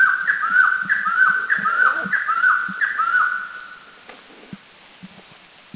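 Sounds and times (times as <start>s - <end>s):
White-crested Laughingthrush in Laos: 0.2s - 3.5s.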